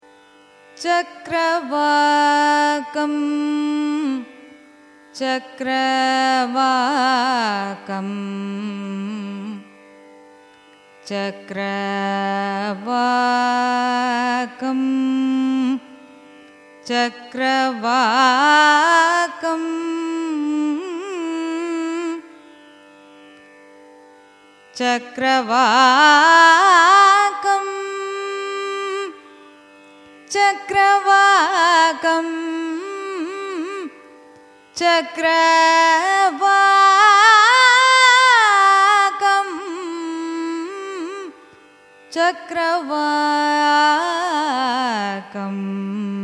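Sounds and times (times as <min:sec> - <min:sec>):
raga chakravakam signature phrase in carnatic music: 0:00.1 - 0:46.2.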